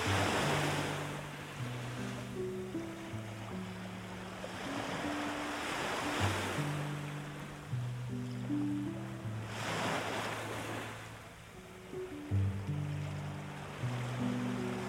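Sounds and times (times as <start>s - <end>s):
sea waves swelling and washing in: 0.0s - 14.8s
soft slow low music tones: 0.0s - 14.8s.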